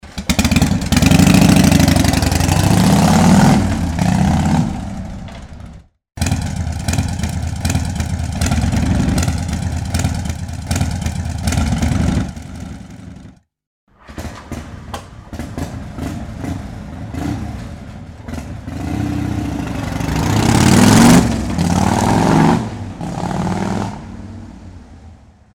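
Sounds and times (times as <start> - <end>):
Harley motorcycle engine starting: 0.0 - 24.4.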